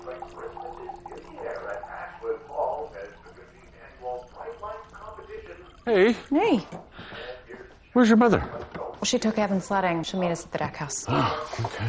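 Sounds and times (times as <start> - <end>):
tea being poured into a cup in a kitchen: 0.0 - 7.4
speech: 5.9 - 6.8, 8.0 - 11.8.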